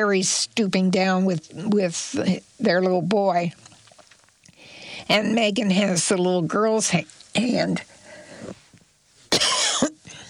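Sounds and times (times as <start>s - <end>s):
speech: 0.0s - 3.7s, 5.1s - 7.9s
cough from a tickle in the throat: 9.3s - 10.2s.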